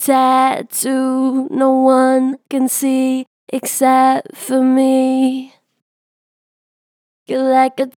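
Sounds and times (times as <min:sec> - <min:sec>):
vocals with strong natural vibrato: 0:00.0 - 0:05.6.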